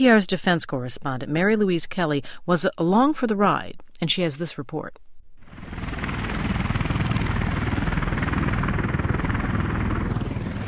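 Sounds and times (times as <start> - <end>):
speech: 0.0 - 5.1
aircraft engines roaring on a military airstrip at Kandahar Air Base, Afghanistan: 5.4 - 10.6.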